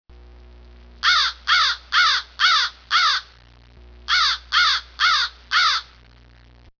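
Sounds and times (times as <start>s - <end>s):
crows cawing: 1.0s - 3.4s, 4.1s - 6.0s.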